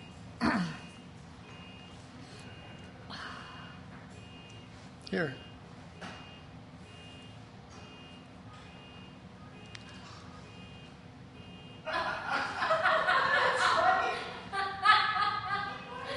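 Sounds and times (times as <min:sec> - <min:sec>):
car beeping outside: 0:00.0 - 0:03.0, 0:03.6 - 0:04.7, 0:05.3 - 0:11.8
speech: 0:05.1 - 0:05.5
laughter: 0:11.9 - 0:16.1.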